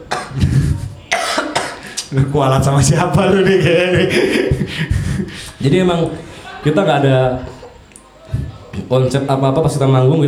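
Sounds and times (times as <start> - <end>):
laughter: 0.0 - 1.1, 1.8 - 9.3
person coughing harshly: 0.1 - 2.1, 3.6 - 5.6
speech: 2.1 - 7.5, 8.8 - 10.2.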